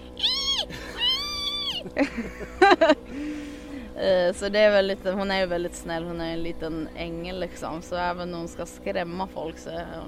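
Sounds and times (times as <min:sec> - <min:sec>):
person imitating a small dog's siren-like guard bark: 0:00.2 - 0:02.0
laughter: 0:00.7 - 0:03.3
speech: 0:01.9 - 0:10.0.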